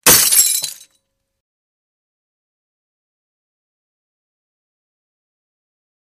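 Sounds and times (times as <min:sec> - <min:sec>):
single window or mirror glass breaking: 0:00.0 - 0:00.9.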